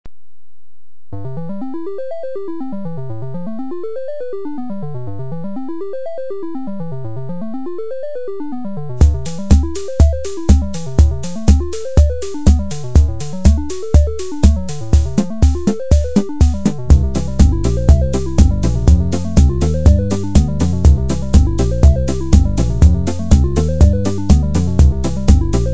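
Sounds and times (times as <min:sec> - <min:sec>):
disco music on a KB500 keyboard: 0:07.7 - 0:25.7.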